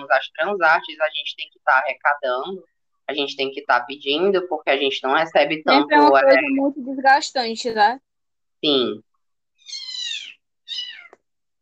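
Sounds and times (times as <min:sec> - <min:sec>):
speech: 0:00.1 - 0:09.1
cat meowing at home: 0:09.6 - 0:11.2.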